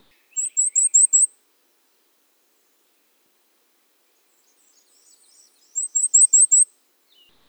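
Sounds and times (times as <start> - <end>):
Cape May warbler singing: 0.2 - 1.3, 4.2 - 7.3.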